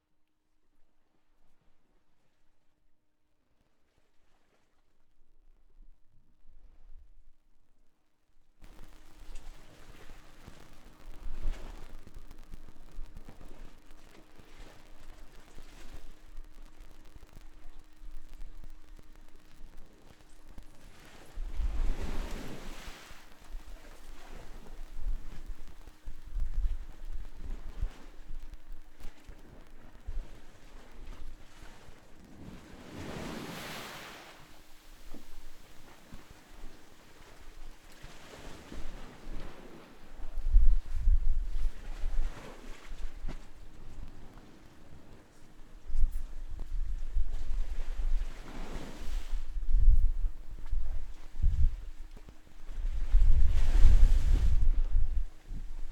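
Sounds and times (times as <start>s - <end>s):
waves in Curacao: 8.6s - 55.9s.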